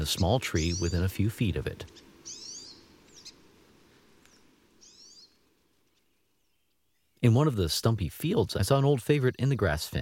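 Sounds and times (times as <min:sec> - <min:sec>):
speech: 0:00.0 - 0:02.1, 0:07.2 - 0:10.0
low background noise: 0:00.0 - 0:10.0
pine siskin calls: 0:01.9 - 0:03.4, 0:04.3 - 0:05.4.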